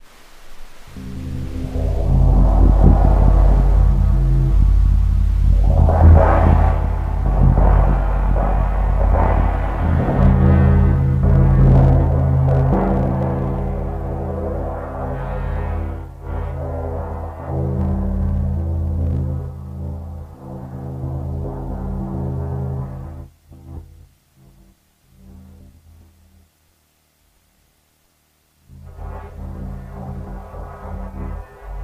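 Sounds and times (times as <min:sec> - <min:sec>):
16-inch crash cymbal: 0:00.0 - 0:23.1.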